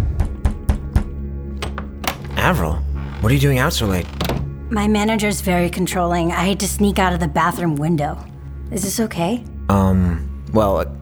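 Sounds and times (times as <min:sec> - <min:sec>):
firm knocks on a door: 0:00.2 - 0:03.4, 0:04.0 - 0:04.5
speech: 0:02.4 - 0:10.9.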